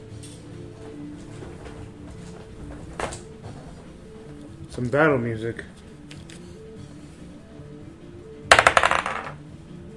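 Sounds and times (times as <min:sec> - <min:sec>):
speech: 0:04.8 - 0:05.8
dice rattling on a hard surface: 0:08.5 - 0:09.4.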